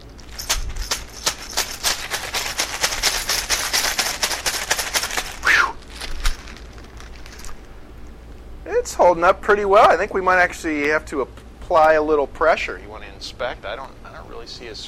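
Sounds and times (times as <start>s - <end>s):
keys and a phone rattling and clinking inside a shaken bag: 0.0s - 7.7s
speech: 9.0s - 14.8s.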